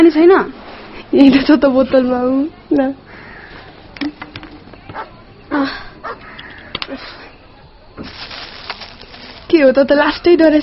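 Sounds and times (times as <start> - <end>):
speech: 0.0 - 3.0, 5.5 - 5.9, 9.6 - 10.6
low steady noise: 0.0 - 10.6
dog barking: 4.9 - 5.2.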